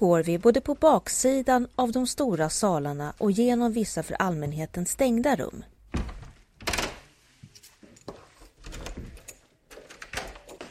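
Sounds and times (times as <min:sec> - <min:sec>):
speech: 0:00.0 - 0:05.7
heavy wooden palace double doors clattering shut in a reverberant room: 0:05.9 - 0:07.0.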